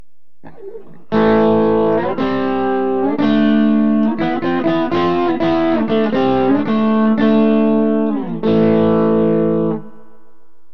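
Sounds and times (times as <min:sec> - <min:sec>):
electric guitar with bridge pickup: 0:00.4 - 0:10.4.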